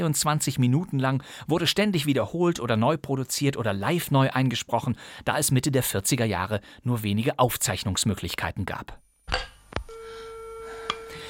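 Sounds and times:
speech: 0.0 - 9.5
telephone busy signal in an American radio drama: 9.9 - 11.2.

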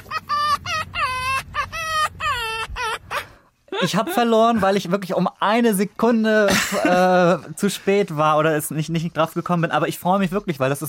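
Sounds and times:
fox cackling call: 0.0 - 3.4
speech: 3.8 - 10.8.

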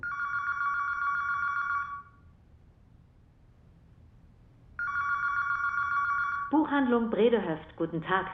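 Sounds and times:
telephone electronic trill ringing for a call to a bookshop: 0.0 - 2.2, 4.8 - 6.6
faint low noise: 0.0 - 8.3
speech: 6.5 - 8.3.

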